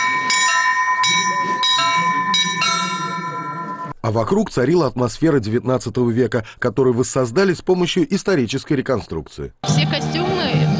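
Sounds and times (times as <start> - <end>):
church bells ringing: 0.0 - 4.0
speech: 4.0 - 10.7.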